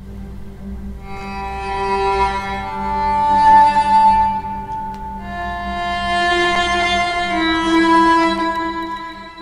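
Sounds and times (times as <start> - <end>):
melancholic video game background music with slow notes over a drone: 0.2 - 9.4.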